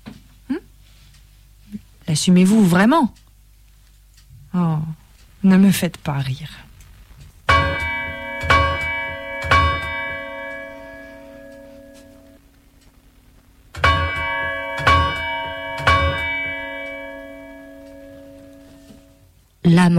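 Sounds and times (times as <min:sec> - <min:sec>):
speech: 0:02.1 - 0:03.2, 0:04.6 - 0:06.7
church bells tolling: 0:07.5 - 0:12.4, 0:13.8 - 0:19.2.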